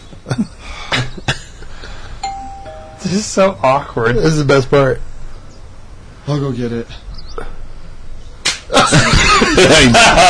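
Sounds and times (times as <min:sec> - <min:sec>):
speech: 0:03.0 - 0:05.1, 0:06.3 - 0:07.5, 0:09.6 - 0:10.2
sharp open-hand slap: 0:08.4 - 0:08.7
laughter: 0:08.7 - 0:10.2.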